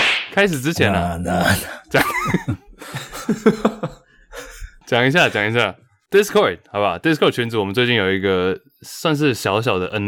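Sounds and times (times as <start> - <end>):
speech: 0.4 - 2.6, 3.3 - 4.0, 4.9 - 10.0
person clearing their throat: 1.3 - 2.8
laughter: 1.3 - 5.6.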